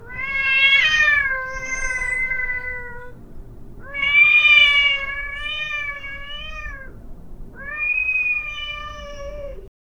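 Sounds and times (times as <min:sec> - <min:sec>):
cat meowing: 0:00.0 - 0:09.7.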